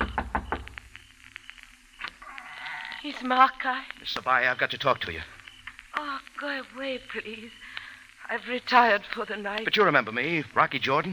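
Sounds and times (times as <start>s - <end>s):
firm knocking on a door: 0.0s - 0.7s
low steady hum: 0.0s - 11.1s
speech: 3.0s - 5.4s, 6.0s - 11.1s.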